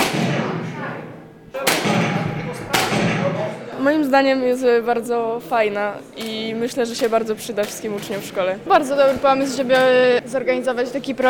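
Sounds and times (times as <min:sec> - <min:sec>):
sharp loud gunshots at a shooting range with rumbling echo: 0:00.0 - 0:03.6
murmuring voices: 0:00.0 - 0:11.2
steady noise: 0:00.0 - 0:11.2
speech: 0:03.8 - 0:11.2.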